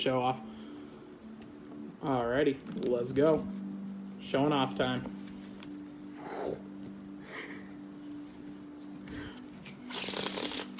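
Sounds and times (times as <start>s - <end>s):
speech: 0.0s - 0.5s, 2.0s - 3.6s, 4.2s - 5.2s
deck of playing cards being cut: 9.0s - 10.7s.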